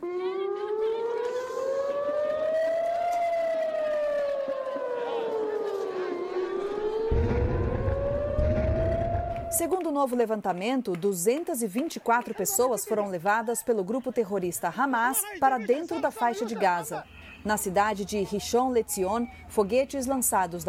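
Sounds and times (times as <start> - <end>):
air raid siren wailing: 0.0 - 9.9
laughter: 4.1 - 6.6, 11.9 - 14.5, 15.1 - 17.1
low rumble of wind or traffic: 6.3 - 9.7
speech: 9.6 - 20.6.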